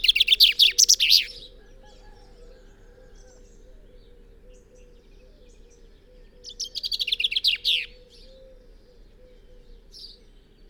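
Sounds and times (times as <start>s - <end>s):
common chaffinch singing: 0.0s - 1.5s, 4.5s - 8.4s.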